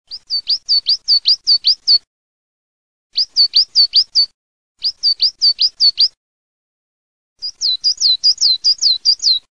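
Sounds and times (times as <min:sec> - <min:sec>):
coal tit singing: 0:00.1 - 0:02.1, 0:03.1 - 0:06.2, 0:07.4 - 0:09.5.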